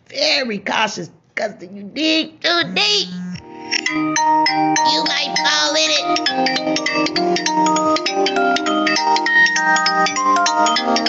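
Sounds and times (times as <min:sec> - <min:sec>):
speech: 0:00.1 - 0:08.4
phone ringing with a bright melodic electronic ringtone: 0:02.7 - 0:11.0.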